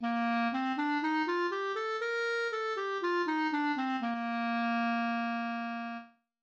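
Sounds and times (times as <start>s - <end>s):
clarinet playing major scales: 0.0s - 6.2s.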